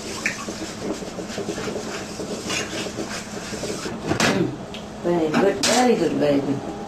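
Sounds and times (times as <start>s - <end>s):
zucchini and squash boiling in a pot of water over medium heat: 0.0s - 4.1s
speech: 5.1s - 6.8s.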